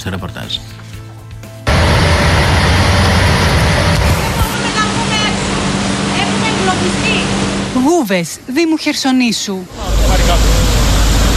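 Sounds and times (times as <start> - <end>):
speech: 0.0 - 0.8, 6.8 - 7.1, 7.7 - 10.6
torrential floodwater from an overflowing river roaring: 1.7 - 8.2, 9.7 - 11.3.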